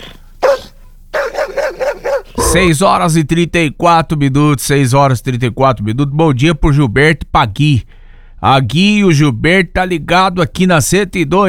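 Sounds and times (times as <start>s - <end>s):
dog barking: 0.0s - 2.7s
speech: 2.5s - 11.4s.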